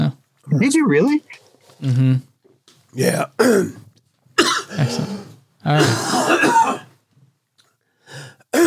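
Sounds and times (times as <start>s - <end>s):
speech: 0.6s - 2.3s, 2.9s - 3.8s, 4.4s - 6.8s
harsh coughing from candy stuck in throat: 3.4s - 3.8s, 4.4s - 7.0s.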